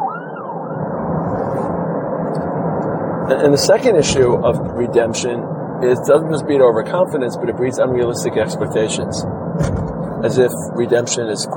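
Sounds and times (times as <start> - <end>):
ambulance siren wailing: 0.0 - 5.2
dense traffic rumble: 0.0 - 11.5
speech: 3.3 - 11.5.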